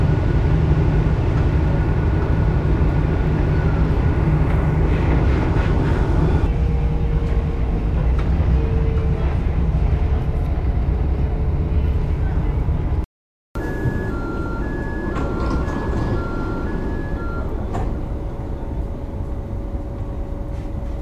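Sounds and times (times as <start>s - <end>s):
rumble from inside a moving train: 0.0s - 13.0s, 13.6s - 20.9s
faint tonal whines: 13.6s - 20.6s.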